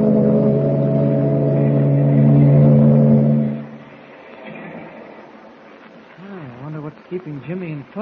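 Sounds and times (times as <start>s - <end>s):
ship engine droning as the ship leaves the harbor: 0.0s - 7.4s
speech: 7.5s - 7.9s.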